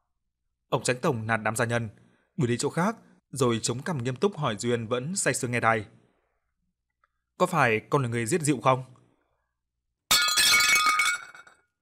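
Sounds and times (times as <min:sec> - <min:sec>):
speech: 0:00.7 - 0:06.0, 0:07.4 - 0:09.0
dropped ceramic teacup shattering: 0:10.1 - 0:11.7.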